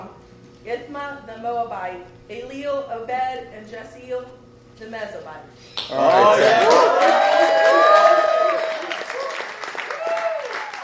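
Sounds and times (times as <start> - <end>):
speech: 0.7 - 7.8
crowd applauding: 5.9 - 10.8.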